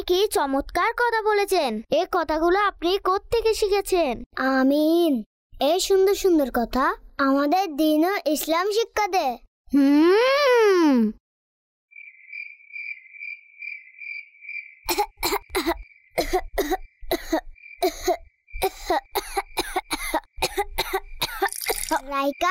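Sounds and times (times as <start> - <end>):
speech: 0.0 - 11.2, 14.9 - 22.4
steady high cricket-like chirping: 11.9 - 19.9, 20.7 - 22.4
person coughing: 14.9 - 22.0.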